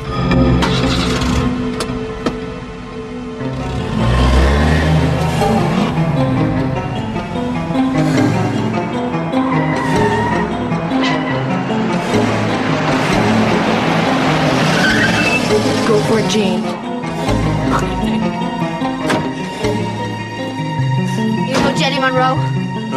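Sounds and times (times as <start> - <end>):
car engine roaring and revving as it speeds off: 0.0 - 22.8
car tires skidding and screeching: 3.4 - 20.9.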